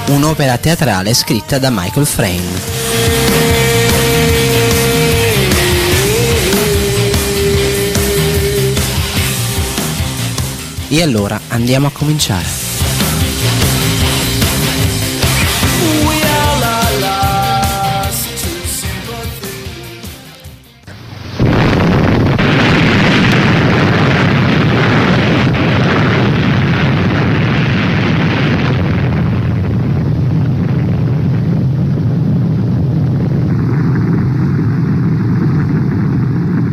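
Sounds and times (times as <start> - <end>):
speech: 0.1 - 3.5, 10.9 - 12.6
tonal music: 1.6 - 10.9, 12.5 - 20.0
roar of the first nuclear bomb explosion over Hiroshima: 2.1 - 18.2, 20.9 - 36.7.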